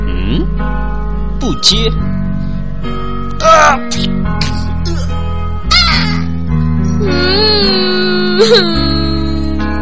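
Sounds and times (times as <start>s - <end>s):
speech: 0.3s - 2.2s, 2.8s - 5.2s, 7.0s - 7.8s, 8.4s - 8.9s
baby crying in drawn-out wails: 4.9s - 6.3s, 7.0s - 9.4s.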